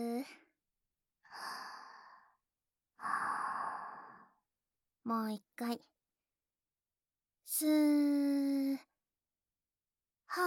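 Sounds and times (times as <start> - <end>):
person taking a deep breath in and out: 1.3 - 2.4, 3.0 - 4.4
speech: 5.1 - 6.0, 7.5 - 8.9.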